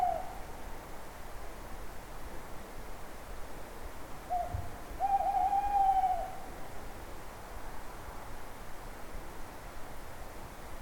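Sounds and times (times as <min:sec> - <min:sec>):
owl hooting: 0:00.0 - 0:00.4, 0:04.3 - 0:06.4.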